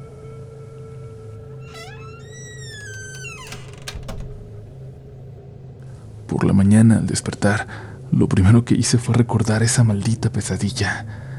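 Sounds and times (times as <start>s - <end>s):
wardrobe door swinging shut with hinge creak and latching: 1.4s - 5.2s
speech: 6.3s - 11.3s.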